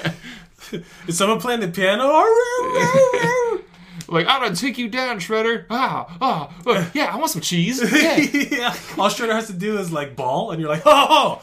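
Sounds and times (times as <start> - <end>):
speech: 0.0 - 11.4
person imitating a beagle howling: 2.2 - 3.6
laughter: 2.3 - 3.6, 7.8 - 9.1.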